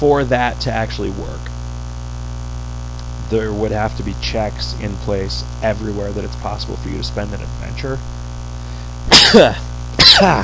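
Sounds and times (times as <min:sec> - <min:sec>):
speech: 0:00.0 - 0:01.5, 0:03.3 - 0:08.2, 0:09.0 - 0:10.4
person sneezing: 0:09.1 - 0:10.4.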